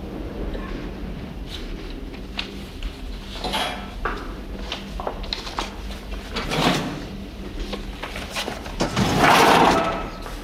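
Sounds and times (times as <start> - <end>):
steady noise: 0.0 - 10.4
scrapes and knocks of a pass-through drawer: 3.3 - 10.4
pass-through drawer sliding beneath a glass partition: 6.2 - 10.3.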